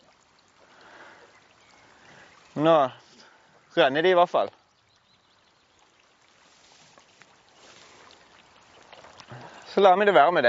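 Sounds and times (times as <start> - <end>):
running water of a small stream: 0.0 - 10.4
speech: 2.6 - 3.0, 3.8 - 4.6, 9.8 - 10.4.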